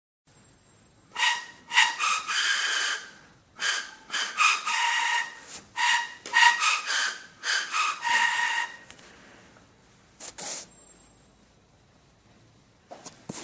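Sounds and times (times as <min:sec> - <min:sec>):
pan flute: 0:01.2 - 0:08.9.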